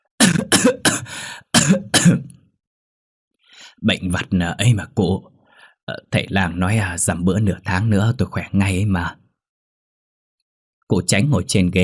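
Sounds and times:
sick man coughing in an old village home: 0:00.2 - 0:02.4
speech: 0:00.6 - 0:02.3, 0:03.8 - 0:05.3, 0:05.9 - 0:09.2, 0:10.9 - 0:11.8.

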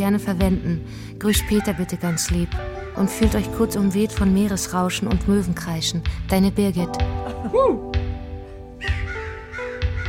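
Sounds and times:
speech: 0:00.0 - 0:08.0
crow cawing: 0:02.0 - 0:03.3, 0:08.8 - 0:10.0.

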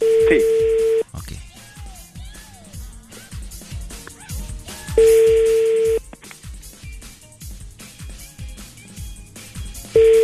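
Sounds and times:
ringback tone of an unanswered prank phone call: 0:00.0 - 0:01.0, 0:05.0 - 0:06.0, 0:10.0 - 0:10.2
busy background of rhythmic low thumps: 0:00.0 - 0:10.2
speech: 0:00.3 - 0:00.5.

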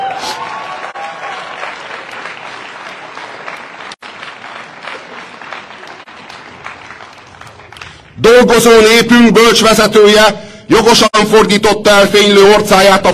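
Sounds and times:
audience applauding: 0:00.0 - 0:08.3
speech: 0:08.2 - 0:13.1.

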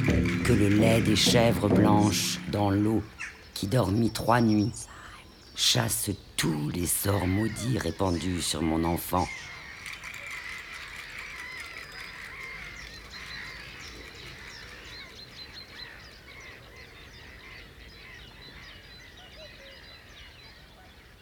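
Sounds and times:
agitated birds calling with high chirps and harsh caw-like notes: 0:00.0 - 0:15.4
speech: 0:00.5 - 0:05.0, 0:05.6 - 0:09.5.

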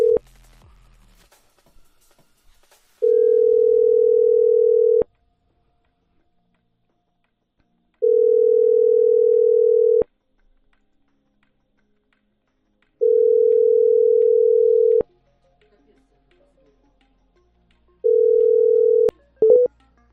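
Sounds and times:
ringback tone of an unanswered telephone call: 0:00.0 - 0:00.2, 0:03.0 - 0:05.1, 0:08.0 - 0:10.0, 0:13.0 - 0:15.0, 0:18.1 - 0:19.7.

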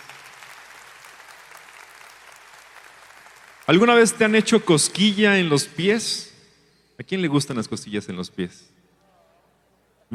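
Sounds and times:
audience applause at an event: 0:00.0 - 0:04.2
speech: 0:03.7 - 0:06.3, 0:07.0 - 0:08.8.

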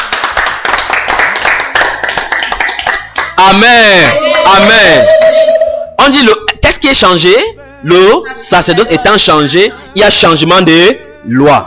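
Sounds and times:
church congregation clapping hands during a sermon: 0:00.0 - 0:05.2
speech: 0:03.5 - 0:05.4, 0:06.0 - 0:11.6.

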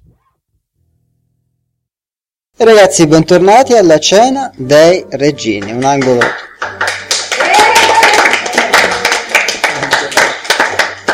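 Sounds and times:
speech: 0:02.6 - 0:06.5
small group applauding at a dinner gathering: 0:05.6 - 0:11.1.

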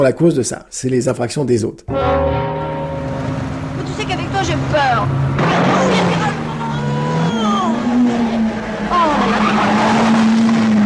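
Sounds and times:
speech: 0:00.0 - 0:02.7, 0:04.0 - 0:06.4
car engine drone while driven fast: 0:02.0 - 0:10.8
car tyres squealing on the road: 0:03.8 - 0:10.5.

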